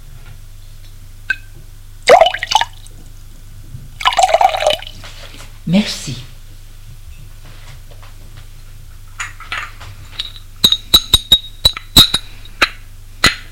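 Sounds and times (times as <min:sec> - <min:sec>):
low steady hum: 0:00.0 - 0:13.5
milk pouring: 0:02.1 - 0:02.9, 0:04.0 - 0:05.0
speech: 0:05.7 - 0:06.3.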